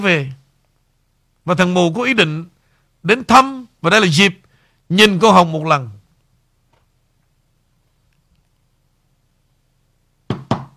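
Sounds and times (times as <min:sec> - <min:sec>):
speech: 0:00.0 - 0:00.4, 0:01.5 - 0:06.0
knocking on a door: 0:10.3 - 0:10.7.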